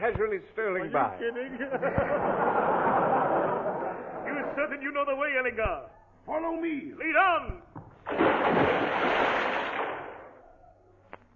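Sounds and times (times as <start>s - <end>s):
speech: 0.0s - 3.7s, 4.3s - 9.1s
laughter: 1.2s - 4.8s
heavy splash of something large plunging into water: 8.0s - 10.4s.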